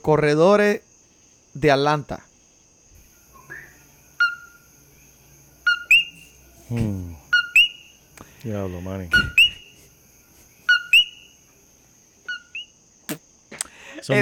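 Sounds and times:
speech: 0.0 - 0.9, 1.6 - 2.3, 6.7 - 7.2, 8.4 - 9.4, 14.0 - 14.2
coquí frogs calling in a two-note chirp: 3.0 - 14.2.

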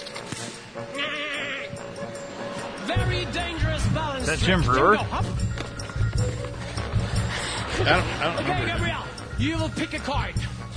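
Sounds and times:
goats bleating: 0.9 - 1.8
speech: 2.9 - 5.4, 7.8 - 10.5
laughter: 4.7 - 5.6, 6.3 - 9.2.

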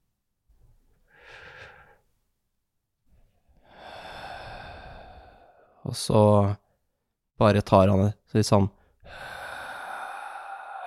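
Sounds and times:
voice imitating a man's long steady exhale: 3.7 - 5.7, 9.1 - 10.8
speech: 5.9 - 6.6, 7.4 - 9.3.

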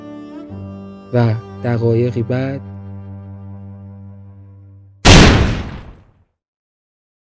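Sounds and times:
speech: 1.1 - 2.7
loud revolver shot fired in a room with rolling echo: 5.1 - 6.0.

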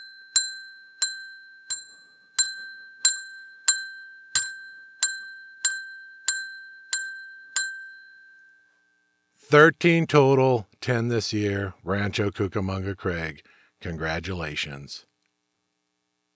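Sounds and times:
bell ringing: 0.0 - 9.2
speech: 9.5 - 15.1.

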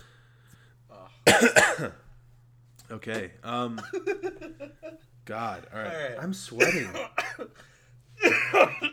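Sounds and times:
person coughing hard from laughing: 1.3 - 2.0, 6.6 - 7.5, 8.2 - 8.9
speech: 1.4 - 2.0, 2.9 - 8.9
laughter: 3.8 - 5.0, 8.2 - 8.9.

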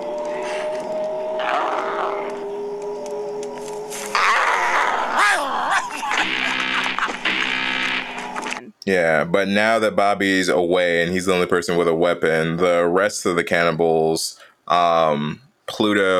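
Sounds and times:
low rough growl breaking into a harsh laughing cackle: 0.1 - 5.7
laughter: 5.3 - 7.7
speech: 8.9 - 16.1.

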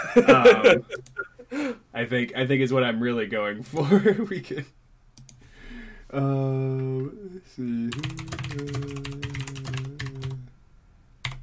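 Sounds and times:
laughter: 0.0 - 1.4
speech: 0.2 - 4.8, 6.1 - 9.2
typing on a new computer keyboard: 7.9 - 10.4, 11.2 - 11.4.

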